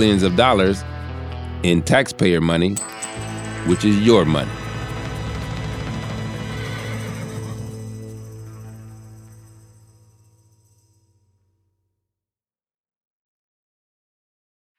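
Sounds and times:
speech: 0:00.0 - 0:01.0, 0:01.6 - 0:03.0, 0:03.6 - 0:04.6
horse hooves clopping: 0:03.2 - 0:08.2
horse neighing: 0:04.5 - 0:08.1.

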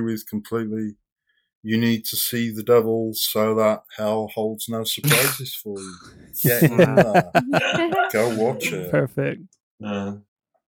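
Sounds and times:
speech: 0:00.0 - 0:01.0, 0:01.6 - 0:10.3
person sneezing: 0:05.0 - 0:06.8
laughter: 0:06.4 - 0:09.4.

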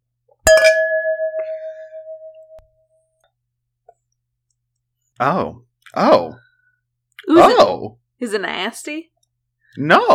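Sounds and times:
glasses clinking in a toast: 0:00.5 - 0:02.6
speech: 0:05.2 - 0:06.4, 0:07.6 - 0:09.1, 0:09.8 - 0:10.1.

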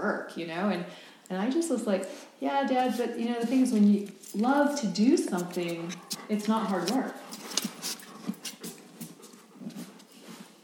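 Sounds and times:
speech: 0:00.0 - 0:07.6
dog panting: 0:05.0 - 0:10.6
soft dog paw or collar sounds: 0:05.3 - 0:10.6.

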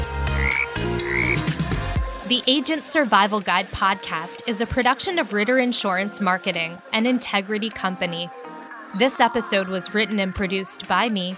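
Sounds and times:
frog croaking: 0:00.3 - 0:01.5
speech: 0:02.3 - 0:11.3.

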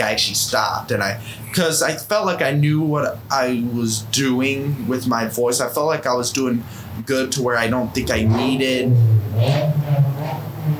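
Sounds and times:
speech: 0:00.0 - 0:10.5
motorcycle engine revving outdoors: 0:08.0 - 0:10.7.

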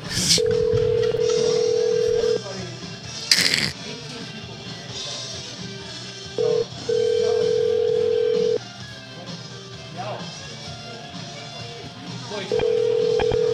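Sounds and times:
phone line ringback buzzing tone on an unanswered call: 0:00.3 - 0:02.4, 0:06.4 - 0:08.6, 0:12.5 - 0:13.5.

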